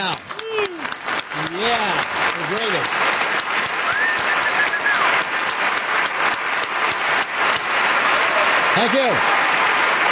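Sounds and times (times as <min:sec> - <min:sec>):
sizable crowd applauding: 0:00.0 - 0:10.1
faint whistle: 0:03.9 - 0:05.1
speech: 0:08.8 - 0:09.3.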